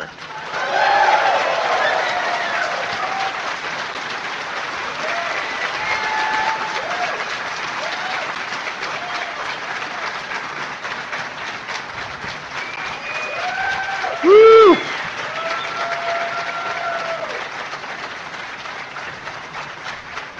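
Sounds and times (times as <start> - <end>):
crowd applauding: 0.0 - 20.3
scattered cheers: 0.3 - 3.6, 4.9 - 9.6, 12.6 - 17.5
sharp loud whoop: 0.5 - 3.4, 5.0 - 7.2, 13.0 - 17.4.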